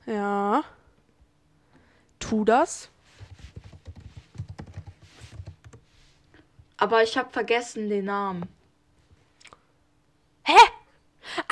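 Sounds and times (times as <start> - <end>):
speech: 0.1 - 0.7, 2.3 - 2.9, 6.8 - 8.6
rapid typing on a computer keyboard writing a message: 3.2 - 5.9.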